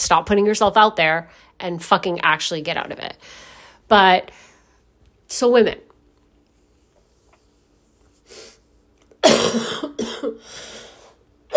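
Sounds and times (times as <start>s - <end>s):
speech: 0.1s - 4.5s, 5.3s - 5.9s
breathy throat clearing: 9.2s - 10.5s
harsh wet coughing fit: 9.2s - 10.6s.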